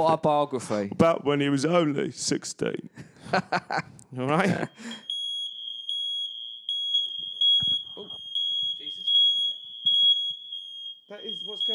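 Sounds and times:
speech: 0.0 - 5.1
fire alarm beeping: 4.7 - 11.7.

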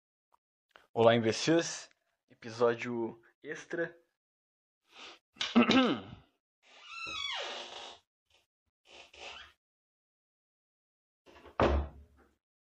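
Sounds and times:
speech: 1.0 - 4.0, 5.0 - 6.2
door creaking open with a groaning squeal: 6.7 - 8.0, 11.3 - 12.0
door thumping shut: 11.5 - 12.0.

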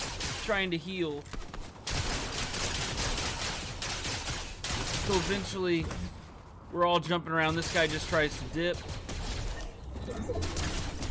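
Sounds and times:
rapid video game gunfire as players shoot into a bush: 0.0 - 5.6, 7.6 - 9.8
speech: 0.5 - 1.4, 5.1 - 6.1, 6.7 - 9.0, 10.1 - 10.7.

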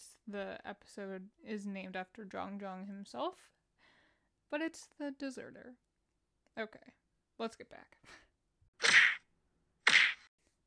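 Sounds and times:
speech: 0.3 - 3.6, 4.5 - 5.8, 6.6 - 8.2
punch sound effects: 8.8 - 9.2, 9.9 - 10.3.

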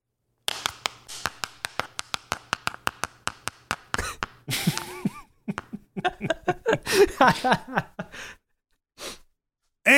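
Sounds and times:
hundred-sided die tumbling across a hard surface: 0.4 - 5.0
laughter: 4.0 - 8.2
speech: 7.2 - 7.9.

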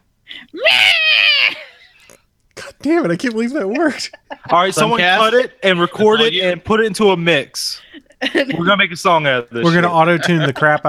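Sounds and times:
person's voice screeching imitating a yowling cat: 0.3 - 2.1
speech: 2.8 - 10.8
laughter: 3.3 - 10.8.

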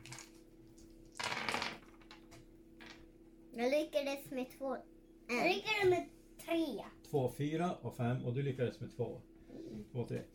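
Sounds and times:
several dice clattering and rattling together: 0.0 - 0.4, 1.1 - 3.1
faint steady hum: 0.0 - 10.3
speech: 3.6 - 10.3.

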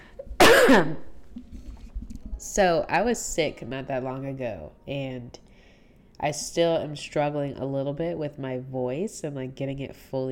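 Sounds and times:
harsh cough: 0.4 - 1.1
speech: 0.7 - 1.1, 2.4 - 5.4, 6.2 - 10.3.

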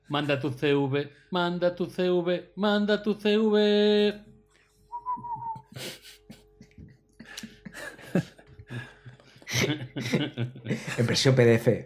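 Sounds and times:
speech: 0.1 - 4.3, 5.7 - 6.2, 7.8 - 8.8, 9.6 - 11.8
brief clear whistled intro jingle: 4.9 - 5.7
people chuckling and laughing: 5.2 - 11.2.

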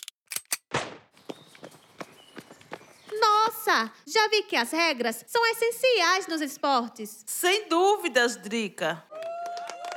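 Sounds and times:
starting pistol shot for a race: 0.7 - 1.1
running footsteps of athletes on an athletics track: 1.1 - 3.6
speech: 3.6 - 9.1.

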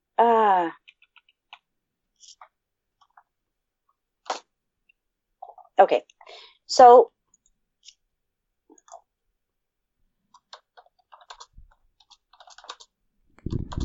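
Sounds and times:
speech: 0.6 - 0.9, 5.8 - 7.2
typing on a computer keyboard: 0.8 - 3.2, 10.3 - 13.8.

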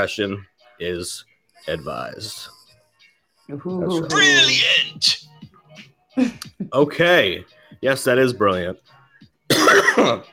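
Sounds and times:
speech: 0.0 - 2.6, 3.5 - 8.9, 9.5 - 10.3
harsh raspy cough: 9.5 - 10.3.

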